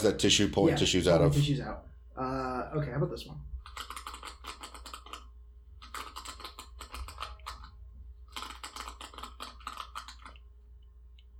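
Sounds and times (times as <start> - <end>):
low steady hum: 0.0 - 3.8, 7.0 - 8.4, 9.8 - 11.3
speech: 0.0 - 4.0
typing on a laptop keyboard: 3.6 - 10.4.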